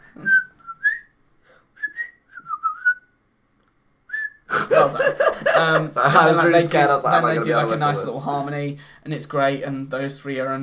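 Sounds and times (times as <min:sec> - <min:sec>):
person whistling a short melody: 0:00.2 - 0:01.1, 0:01.8 - 0:03.1, 0:04.1 - 0:04.4
laughter: 0:04.5 - 0:08.5
speech: 0:05.6 - 0:10.6.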